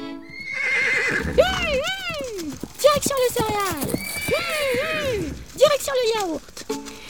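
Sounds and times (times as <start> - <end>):
horse neighing with a long shaky whinny: 0.2 - 5.6
horse hooves clip-clopping: 0.2 - 7.0.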